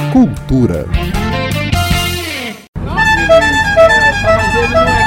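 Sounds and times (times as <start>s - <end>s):
speech: 0.1s - 1.1s
vintage Chevrolet 6500 bus horn honking: 2.9s - 5.0s.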